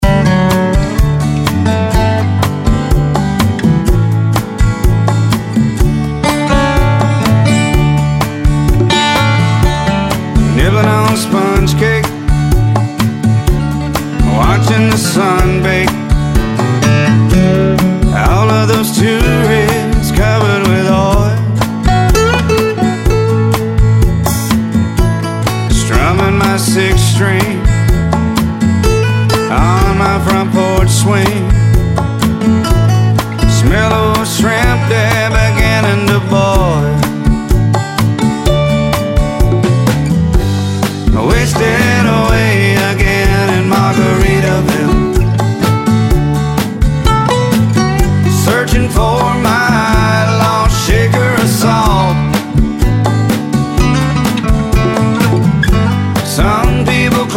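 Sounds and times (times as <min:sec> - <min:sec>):
solo acoustic guitar: 0:00.0 - 0:57.3.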